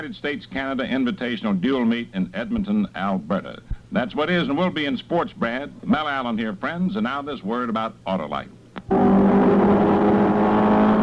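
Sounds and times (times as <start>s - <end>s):
speech: 0.0s - 9.0s
Ford Mark IV race car engine roaring: 8.9s - 11.0s.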